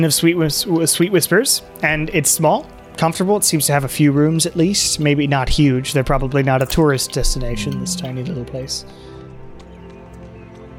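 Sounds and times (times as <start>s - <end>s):
speech: 0.0s - 9.1s
horse hooves clip-clopping: 6.6s - 10.7s.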